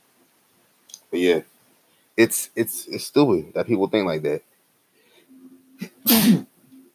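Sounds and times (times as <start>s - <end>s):
faint steady hum: 0.0s - 6.9s
speech: 1.1s - 1.5s, 2.2s - 4.5s, 6.1s - 6.5s
loud sneeze: 6.0s - 6.5s.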